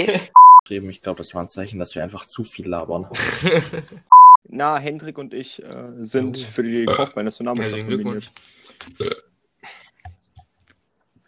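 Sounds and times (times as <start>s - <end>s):
laughter: 0.0s - 0.4s, 3.1s - 4.1s
speech: 0.0s - 9.2s
loud throaty burp: 6.8s - 7.2s, 9.0s - 9.3s.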